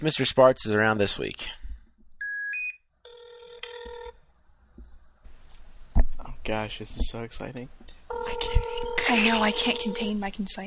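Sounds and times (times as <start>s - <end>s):
speech: 0.0s - 1.6s, 6.4s - 10.6s
telephone ringing on an outgoing call: 2.2s - 4.2s, 8.1s - 10.2s
short dial-tone beeps: 8.1s - 10.2s.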